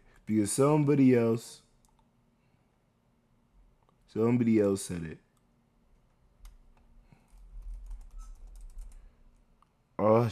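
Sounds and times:
speech: 0.3 - 1.6, 4.1 - 5.2, 10.0 - 10.3
rapid typing on a computer keyboard: 7.3 - 9.1.

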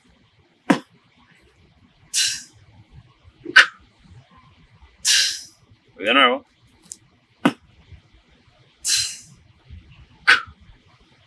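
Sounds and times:
basic vocal beatbox pattern in a beginners' beatbox lesson: 0.7 - 0.9, 2.1 - 2.6, 5.0 - 5.5, 8.8 - 9.4, 10.3 - 10.6
speech: 6.0 - 6.5.

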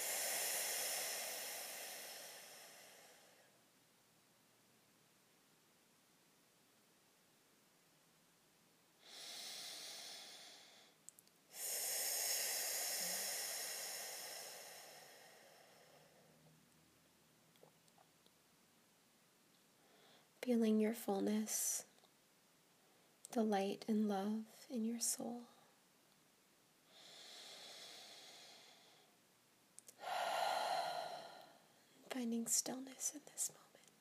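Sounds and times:
slow deep breathing: 0.0 - 3.6, 9.0 - 16.6, 19.8 - 20.3, 26.8 - 29.2, 29.8 - 32.1
speech: 20.5 - 21.9, 23.4 - 25.6, 32.2 - 33.8.

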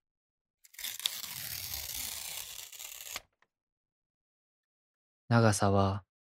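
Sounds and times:
paper torn into a long thin strip: 0.6 - 3.4
speech: 5.3 - 6.1.

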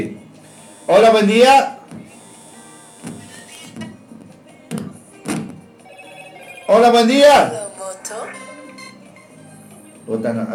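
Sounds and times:
speech: 0.9 - 1.8, 6.7 - 7.6, 10.1 - 10.5
telephone ringing with a bright electronic tone: 5.8 - 9.2.

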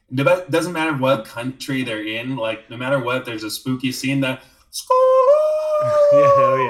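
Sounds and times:
speech: 0.1 - 6.6
voice imitating a loon's wail: 4.9 - 6.6
laughter: 5.6 - 6.6.

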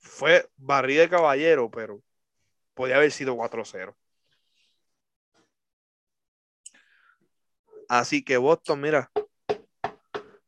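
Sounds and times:
speech: 0.2 - 2.1, 2.8 - 4.0, 7.9 - 9.2
firm knocking on a door: 9.1 - 10.4.

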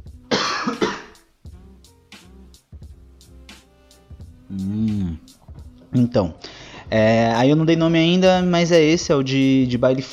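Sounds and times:
quick harsh coughs: 0.3 - 1.2
speech: 4.5 - 5.0, 6.0 - 10.1.

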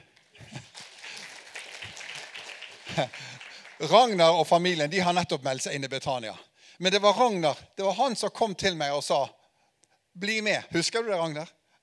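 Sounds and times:
audience applauding: 0.0 - 4.8
laughter: 0.3 - 3.8
speech: 3.0 - 9.4, 10.2 - 11.6.

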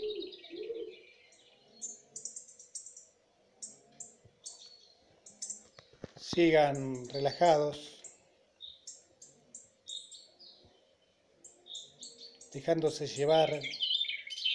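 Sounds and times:
high birdsong chirps: 0.0 - 14.5
calm voice speaking over a guided meditation: 6.2 - 8.0, 12.5 - 13.7
speech: 6.4 - 7.9, 12.6 - 13.8.

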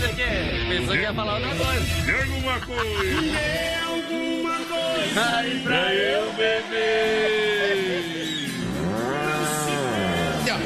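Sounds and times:
speech: 0.2 - 9.2
laughter: 2.1 - 4.1
old ox mooing: 8.6 - 10.6.

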